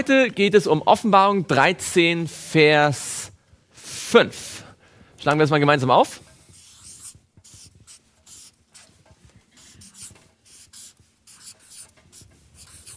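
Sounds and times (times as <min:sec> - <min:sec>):
speech: 0:00.0 - 0:03.3, 0:04.1 - 0:04.6, 0:05.2 - 0:06.2
writing on a board: 0:06.2 - 0:12.9.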